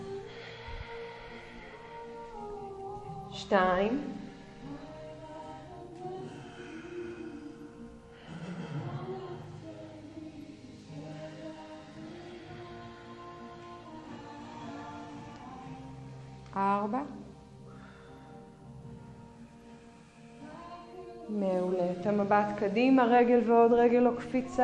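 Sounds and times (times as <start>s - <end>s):
slow deep yoga breathing, inhaling and exhaling: 0.0s - 3.3s, 4.0s - 16.4s, 17.4s - 20.7s
faint sustained musical drone: 0.0s - 24.6s
speech: 3.4s - 4.2s, 22.3s - 24.6s.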